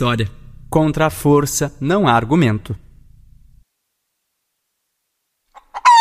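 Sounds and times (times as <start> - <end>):
speech: 0.0 - 2.8
faint low rumble: 0.0 - 3.7
chicken squawking and clucking: 5.5 - 5.9.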